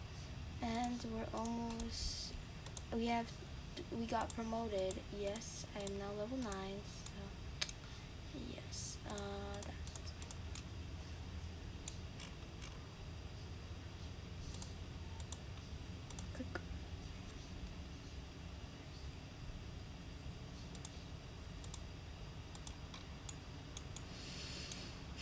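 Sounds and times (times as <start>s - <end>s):
steady hum: 0.0s - 25.2s
rapid computer mouse clicking: 0.6s - 1.9s, 2.6s - 2.9s, 4.2s - 7.8s, 9.0s - 10.7s, 14.5s - 16.4s, 20.6s - 21.9s, 22.5s - 24.8s
speech: 0.6s - 2.2s, 2.9s - 7.4s, 8.3s - 9.8s.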